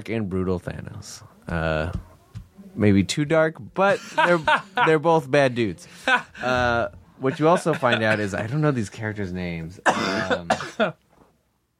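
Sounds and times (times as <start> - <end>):
speech: 0.0 - 2.1, 2.8 - 11.0
laughter: 3.8 - 8.8
person coughing: 9.8 - 11.0.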